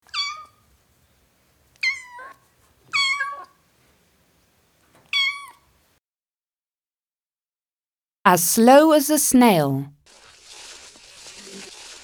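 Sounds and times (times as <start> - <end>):
kitten meowing: 0.1 - 0.5, 2.9 - 3.5, 5.1 - 5.6
speech: 8.2 - 10.0.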